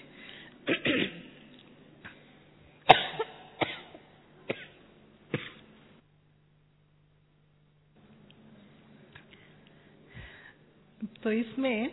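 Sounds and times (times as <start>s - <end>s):
person coughing in a loud fit: 0.6s - 1.4s, 2.9s - 5.7s
speech: 11.2s - 11.9s.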